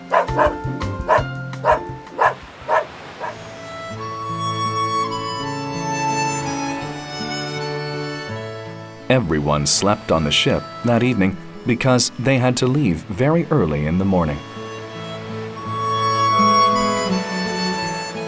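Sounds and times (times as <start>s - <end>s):
boy's small dog barking: 0.0s - 3.4s
soft music with sustained tones: 0.0s - 18.2s
speech: 9.1s - 14.5s.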